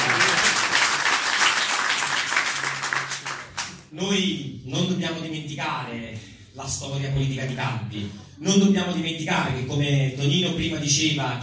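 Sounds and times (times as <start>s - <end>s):
audience applause at a political gathering: 0.0s - 3.8s
speech: 4.0s - 11.4s.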